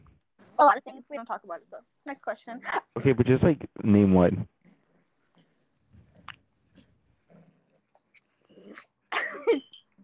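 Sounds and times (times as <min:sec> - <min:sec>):
speech: 0:00.6 - 0:04.6, 0:09.5 - 0:09.7
dog growling and snarling while mouthing and chewing: 0:04.7 - 0:09.0.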